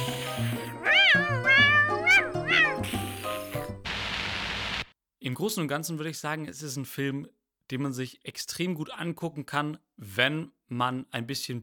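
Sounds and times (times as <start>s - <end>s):
cat meowing: 0.0s - 3.7s
speech: 5.2s - 11.6s.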